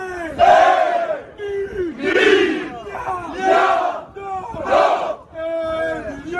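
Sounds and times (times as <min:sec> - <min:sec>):
large crowd of football supporters chanting in stadium stands at a French Cup match: 0:00.4 - 0:01.3, 0:02.0 - 0:05.2.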